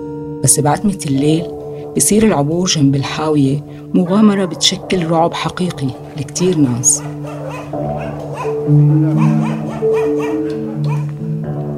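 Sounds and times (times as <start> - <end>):
speech: 0.4 - 7.2, 8.7 - 9.6
steady sustained musical drone: 0.9 - 11.7
stray dogs barking and yipping: 3.7 - 11.6.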